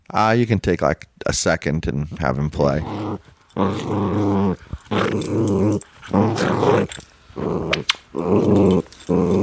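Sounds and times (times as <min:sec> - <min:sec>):
speech: 0:00.1 - 0:09.4
dog growling while playing: 0:02.6 - 0:09.4.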